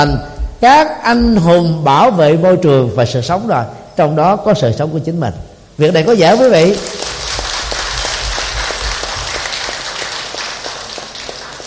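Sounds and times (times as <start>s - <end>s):
speech: 0.0s - 7.0s
audience of elders and adults applauding: 6.3s - 11.6s.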